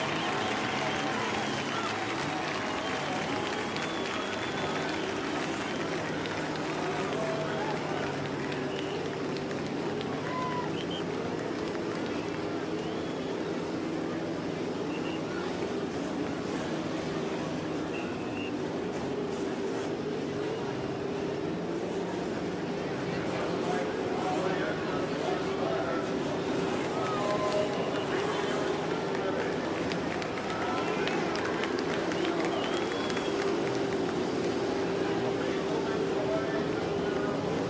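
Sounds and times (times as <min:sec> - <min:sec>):
many race car engines starting and revving on the main stretch at Indianapolis Motor Speedway: 0:00.0 - 0:37.6.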